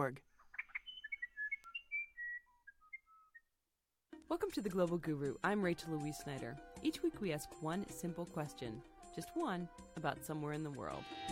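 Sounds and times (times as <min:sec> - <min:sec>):
speech: 0:00.0 - 0:00.3, 0:04.3 - 0:11.3
South American musician wren singing whistled notes: 0:00.4 - 0:03.5.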